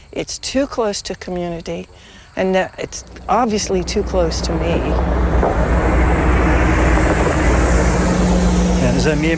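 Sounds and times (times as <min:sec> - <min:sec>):
speech: 0:00.1 - 0:05.6, 0:09.0 - 0:09.3
large bus engine rumbling by: 0:02.4 - 0:09.3.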